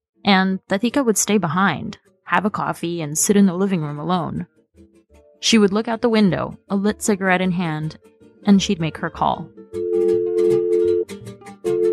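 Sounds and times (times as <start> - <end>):
speech: 0.2 - 10.1
telephone dial tone: 9.8 - 11.1, 11.7 - 11.9.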